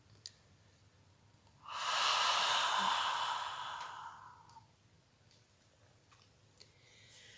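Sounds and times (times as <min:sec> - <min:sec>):
slow breath of warm humid air exhaled through an open mouth: 0:01.6 - 0:04.6.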